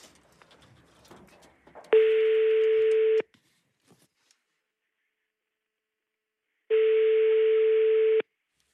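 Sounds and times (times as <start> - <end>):
faint handling noise: 0.0 - 4.6
ringback tones of an outgoing phone call: 1.9 - 3.2, 6.7 - 8.2.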